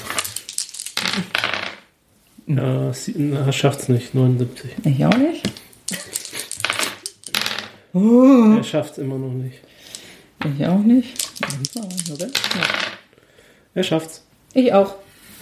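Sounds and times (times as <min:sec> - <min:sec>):
dice rattling and clattering across a hard surface: 0:00.0 - 0:01.9, 0:05.0 - 0:07.7, 0:11.0 - 0:13.0
speech: 0:01.2 - 0:01.4, 0:02.5 - 0:06.0, 0:07.9 - 0:09.7, 0:10.4 - 0:13.0, 0:13.8 - 0:15.3.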